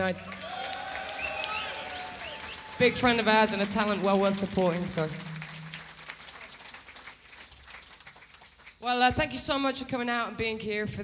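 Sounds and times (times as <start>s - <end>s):
speech: 0.0s - 0.4s, 2.8s - 5.4s, 8.8s - 11.0s
subdued crowd applauding: 0.0s - 8.8s.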